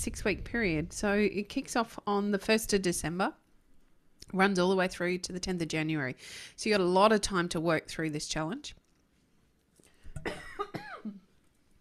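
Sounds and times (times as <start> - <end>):
speech: 0.0 - 3.4, 4.3 - 8.8
harsh wet coughing with raspy throat-clearing: 10.2 - 11.2.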